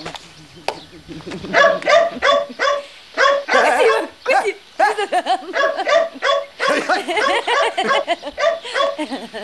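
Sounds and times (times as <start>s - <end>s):
laughter: 1.0s - 2.6s, 4.8s - 9.4s
speech: 1.1s - 1.9s
dog barking: 1.5s - 4.2s, 5.5s - 9.1s.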